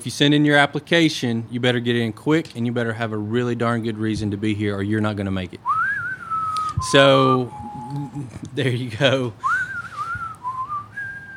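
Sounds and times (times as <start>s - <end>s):
speech: 0.0s - 5.8s, 6.8s - 9.6s
person whistling a wavering sustained tune: 5.7s - 8.3s, 9.4s - 11.3s.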